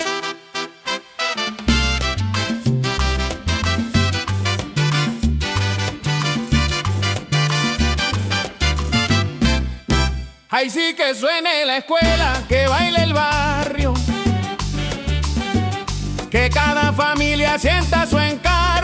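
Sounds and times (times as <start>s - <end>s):
merengue music: 0.0s - 18.8s.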